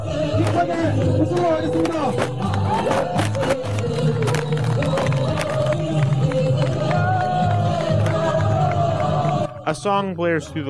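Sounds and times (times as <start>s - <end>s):
crowd of students shouting and cheering at a protest: 0.0s - 9.7s
crowd of students stomping on and crushing a wooden tank: 0.3s - 8.2s
speech: 0.6s - 3.2s, 9.7s - 10.6s.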